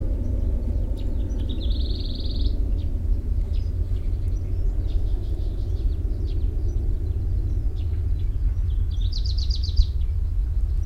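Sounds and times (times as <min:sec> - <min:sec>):
grey-crowned warbler Seicercus tephrocephalus: 0:00.0 - 0:10.8.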